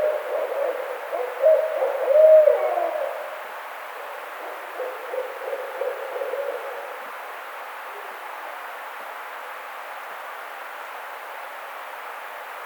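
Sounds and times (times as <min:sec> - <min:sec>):
barred owl hooting: 0:00.0 - 0:07.0.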